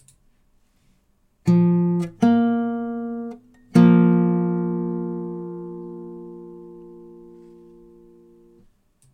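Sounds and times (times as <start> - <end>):
guitar playing a fourth interval: 1.4 - 8.6.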